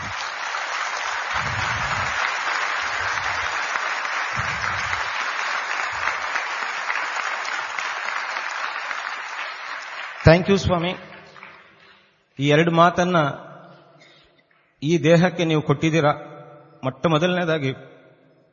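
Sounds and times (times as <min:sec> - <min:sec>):
audience at a gathering applauding loudly: 0:00.0 - 0:12.1
speech: 0:10.3 - 0:11.1, 0:12.4 - 0:13.5, 0:14.8 - 0:17.9.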